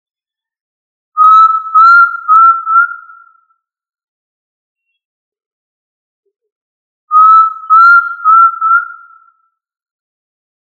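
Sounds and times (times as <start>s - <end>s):
tinamou whistled call: 1.2s - 3.5s, 7.1s - 9.5s.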